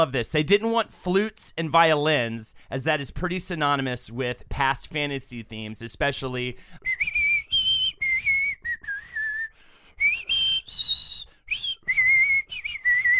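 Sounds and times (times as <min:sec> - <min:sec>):
speech: 0:00.0 - 0:07.2
person whistling a TV show theme melody: 0:06.7 - 0:13.1.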